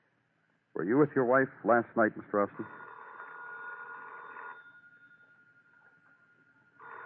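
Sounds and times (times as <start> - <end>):
speech: 0.8 - 2.8
telephone ringing: 2.6 - 5.8, 6.7 - 7.0.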